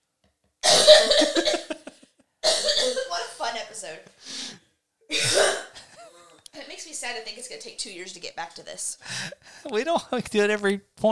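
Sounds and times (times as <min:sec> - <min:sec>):
person coughing in a rapid fit: 0:00.6 - 0:03.2, 0:05.1 - 0:06.4
speech: 0:07.0 - 0:11.1.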